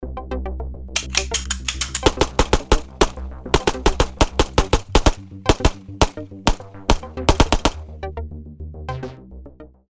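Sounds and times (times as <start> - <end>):
Ruger P89 9mm handgun shots: 1.0 - 7.8.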